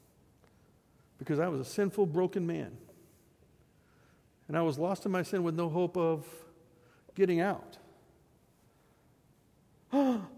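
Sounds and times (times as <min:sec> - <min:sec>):
speech: 0:01.2 - 0:02.9, 0:04.5 - 0:06.5, 0:07.2 - 0:07.8
person gasping: 0:09.9 - 0:10.3.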